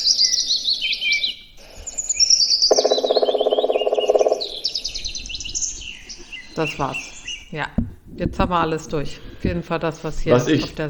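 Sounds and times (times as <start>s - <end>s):
other birds chirping and warbling: 0.0s - 10.8s
Black Woodpecker drumming: 2.5s - 9.6s
speech: 6.6s - 10.8s.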